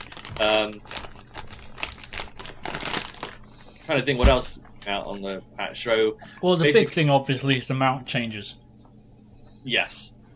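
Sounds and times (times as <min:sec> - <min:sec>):
paper bag of sweets rustling and crinkling: 0:00.0 - 0:05.2
speech: 0:00.4 - 0:01.0, 0:03.9 - 0:08.6, 0:09.6 - 0:10.1.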